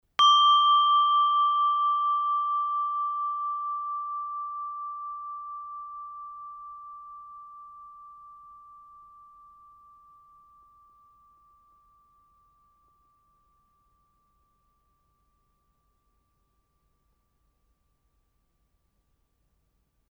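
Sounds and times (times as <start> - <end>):
medium beehive bell ringing: 0.2 - 4.2.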